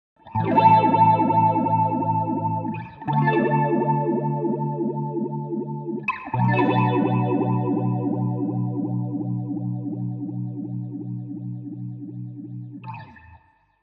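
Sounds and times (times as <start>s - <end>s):
electric guitar vibrato: 0.4s - 12.0s.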